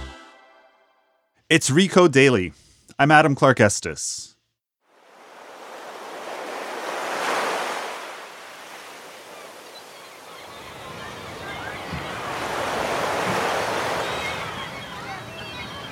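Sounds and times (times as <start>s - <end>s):
speech: 1.5s - 4.3s
ocean surf crashing and hissing: 5.0s - 15.9s.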